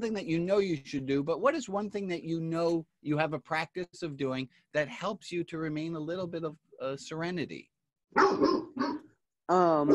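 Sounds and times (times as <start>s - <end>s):
speech: 0.0s - 9.9s
dog barking: 8.1s - 9.2s
dog yelping: 8.2s - 9.1s.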